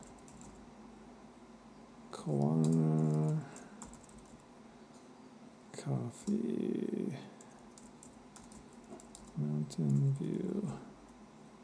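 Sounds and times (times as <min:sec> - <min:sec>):
computer keyboard typing: 0:00.0 - 0:00.6, 0:02.3 - 0:04.4, 0:07.4 - 0:10.7
low hum of room or fan noise: 0:00.0 - 0:11.6
speech: 0:02.2 - 0:03.0, 0:09.8 - 0:10.9.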